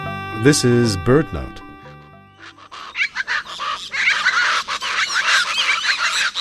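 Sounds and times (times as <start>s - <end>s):
speech: 0.5s - 1.6s
flock of chachalacas calling with rhythmic guffaws: 2.3s - 6.3s.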